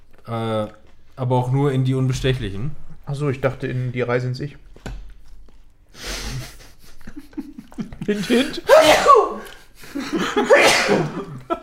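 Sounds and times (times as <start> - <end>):
speech: 0.3 - 4.7, 8.1 - 9.3, 10.0 - 11.4
laughter: 6.0 - 11.6
person sneezing: 8.2 - 9.6, 10.4 - 11.3.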